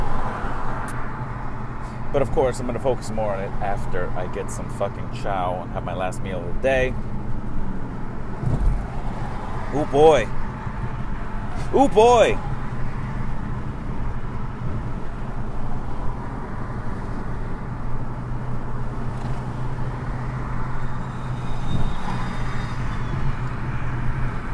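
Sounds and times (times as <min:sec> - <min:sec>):
city road traffic in San Jose: 0:00.0 - 0:24.5
speech: 0:02.1 - 0:07.2, 0:09.7 - 0:10.4, 0:11.7 - 0:12.5.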